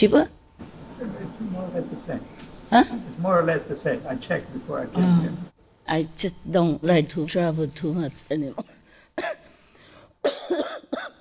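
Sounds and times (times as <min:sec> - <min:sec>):
speech: 0:00.0 - 0:00.4, 0:01.7 - 0:08.7
harsh raspy coughs from one person: 0:08.6 - 0:09.5, 0:10.2 - 0:11.1.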